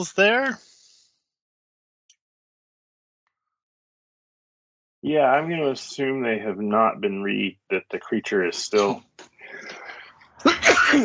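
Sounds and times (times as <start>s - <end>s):
speech: 0.0s - 0.7s, 5.0s - 9.8s, 10.4s - 11.0s
person sneezing: 10.4s - 11.0s.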